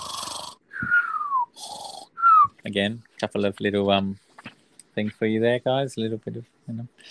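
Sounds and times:
person imitating a sleeping tramp's snore: 0:00.0 - 0:00.6, 0:01.6 - 0:02.1
speech: 0:02.7 - 0:04.2, 0:05.0 - 0:07.0.

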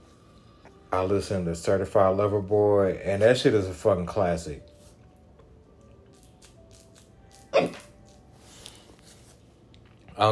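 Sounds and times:
speech: 0:00.9 - 0:04.7
hiccup: 0:07.5 - 0:07.9.

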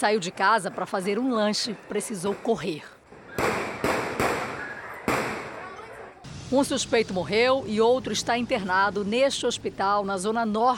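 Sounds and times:
speech: 0:00.0 - 0:03.0, 0:06.5 - 0:10.7
gunshots on a street during a shootout: 0:03.3 - 0:05.7.

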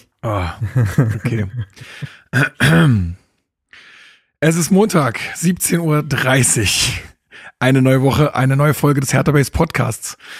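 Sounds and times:
speech: 0:00.2 - 0:03.2, 0:03.8 - 0:10.3
laughter: 0:00.3 - 0:02.2
harsh raspy dry coughs: 0:01.1 - 0:03.3
rough throat clearing: 0:01.2 - 0:03.3
breathy sounds: 0:01.7 - 0:04.4, 0:07.2 - 0:07.6.

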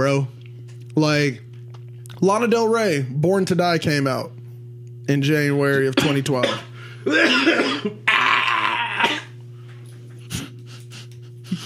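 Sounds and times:
speech: 0:00.0 - 0:00.4, 0:01.0 - 0:01.5, 0:02.2 - 0:04.4, 0:05.1 - 0:08.0
steady low electrical hum: 0:00.0 - 0:11.6
person sneezing: 0:06.4 - 0:09.4.

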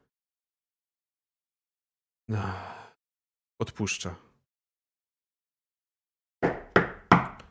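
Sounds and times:
speech: 0:02.3 - 0:02.7, 0:03.6 - 0:04.3
knocking on a heavy metal door: 0:06.4 - 0:07.4.

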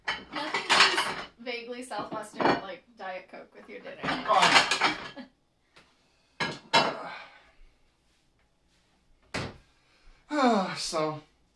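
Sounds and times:
pots and pans clattering during cooking: 0:00.0 - 0:01.4, 0:02.0 - 0:02.7, 0:03.8 - 0:05.2, 0:06.4 - 0:07.0
speech: 0:01.7 - 0:05.0.

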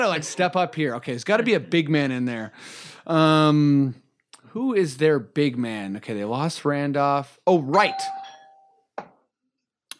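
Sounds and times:
speech: 0:00.0 - 0:08.2
doorbell chiming with a clear ringing tone: 0:07.7 - 0:08.9.

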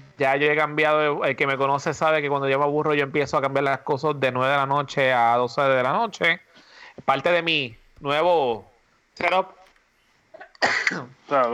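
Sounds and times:
speech: 0:00.2 - 0:09.6, 0:10.6 - 0:11.5
quick intake of breath: 0:06.5 - 0:07.0
sneeze: 0:10.4 - 0:11.2.

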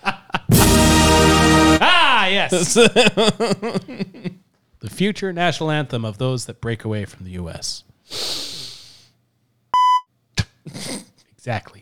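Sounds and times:
laughter: 0:00.0 - 0:04.4
speech: 0:02.4 - 0:08.4, 0:10.6 - 0:11.8
breathy hissing inhale: 0:08.1 - 0:09.1.

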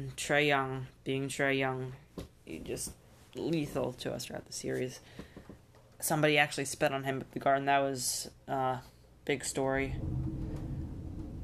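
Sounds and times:
speech: 0:00.0 - 0:05.3, 0:06.0 - 0:10.4
thunder rumbling: 0:09.8 - 0:11.4.

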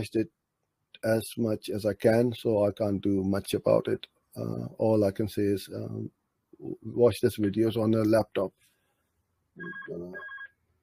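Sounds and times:
speech: 0:00.0 - 0:00.4, 0:01.0 - 0:08.6, 0:09.6 - 0:10.3
electronic phone ringtone: 0:09.6 - 0:10.6.

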